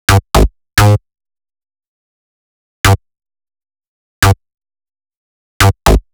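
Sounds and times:
retro drum and bass stab: 0.1s - 1.0s, 5.6s - 6.0s.

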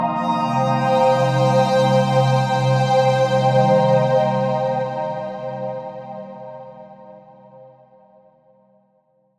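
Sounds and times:
synth pad loop: 0.2s - 7.1s.

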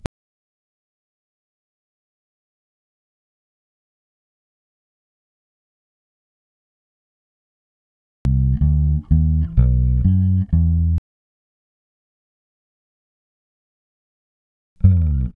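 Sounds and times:
bass in A minor at 125 BPM: 8.3s - 11.0s, 14.8s - 15.3s.

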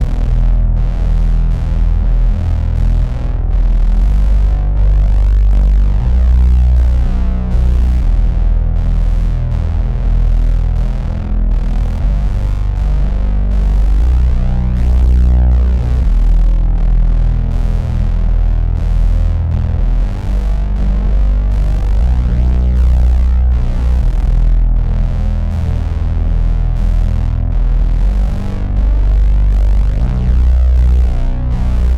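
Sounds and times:
boxy bass drone in E minor: 0.0s - 31.9s.

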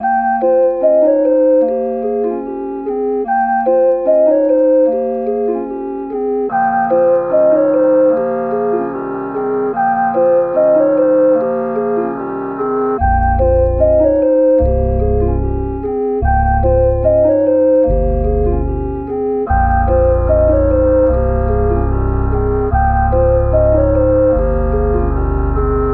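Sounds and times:
melodic circus music loop in F minor: 0.0s - 25.9s.

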